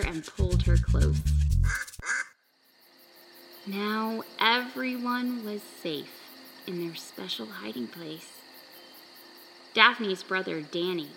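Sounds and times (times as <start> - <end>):
speech: 0.0 - 1.8, 3.6 - 8.4, 9.8 - 11.1
duck quacking: 1.6 - 2.4
faint noise: 2.4 - 11.1.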